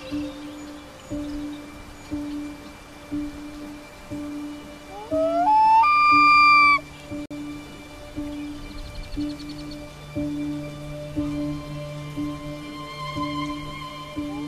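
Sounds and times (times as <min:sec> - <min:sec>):
soft rhythmic musical tones: 0:00.0 - 0:14.4
Common Loon wailing: 0:04.9 - 0:06.9.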